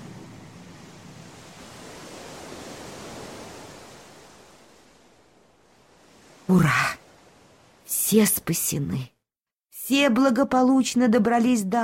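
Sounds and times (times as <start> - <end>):
ocean waves: 0.0 - 8.8
speech: 6.5 - 6.9, 8.1 - 9.1, 9.9 - 11.8.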